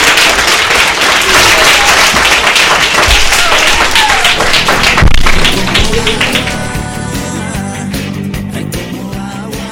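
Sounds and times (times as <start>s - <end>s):
crowd applauding: 0.0s - 7.3s
music: 3.1s - 9.7s.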